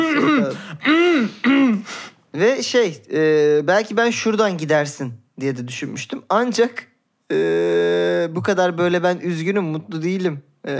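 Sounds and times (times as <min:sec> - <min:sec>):
person clearing throat: 0:00.0 - 0:01.8
speech: 0:02.4 - 0:10.7.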